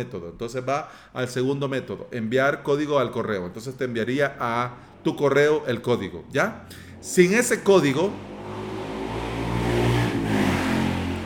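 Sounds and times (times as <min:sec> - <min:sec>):
speech: 0:00.0 - 0:08.3
loud buzzing motorcycle engine revving: 0:06.7 - 0:11.2.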